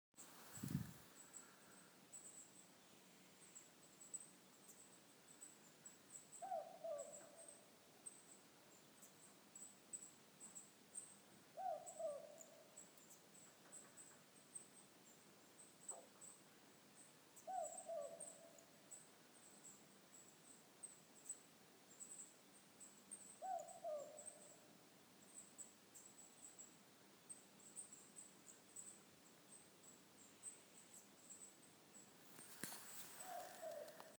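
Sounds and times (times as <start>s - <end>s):
powerful owl calling: 6.4s - 7.5s, 11.6s - 12.7s, 17.4s - 18.6s, 23.4s - 24.5s, 32.6s - 34.1s.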